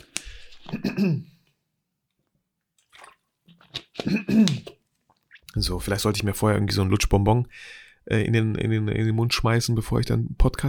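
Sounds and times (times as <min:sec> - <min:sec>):
speech: 0:01.0 - 0:01.3, 0:04.1 - 0:04.8, 0:05.6 - 0:10.6
sipping and swallowing water: 0:02.8 - 0:05.6.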